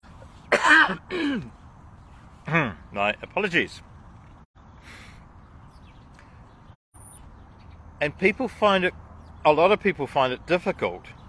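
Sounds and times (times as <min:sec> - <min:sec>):
person coughing: 0:00.5 - 0:01.5
throat clearing: 0:00.5 - 0:01.6
speech: 0:00.8 - 0:01.6, 0:02.5 - 0:03.9, 0:08.0 - 0:11.2.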